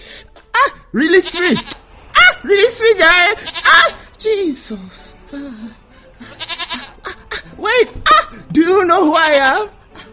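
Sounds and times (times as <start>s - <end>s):
speech: 0.9s - 1.8s, 2.4s - 6.4s, 7.6s - 9.8s
goat bleating: 1.1s - 1.8s, 3.3s - 4.0s, 6.3s - 7.1s.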